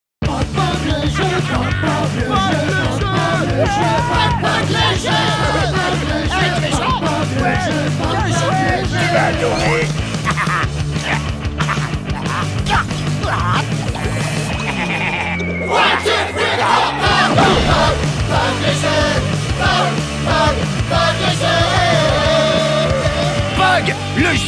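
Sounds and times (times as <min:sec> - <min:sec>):
chanting: 0:00.4 - 0:09.9, 0:15.5 - 0:24.3
laughter: 0:00.9 - 0:19.9.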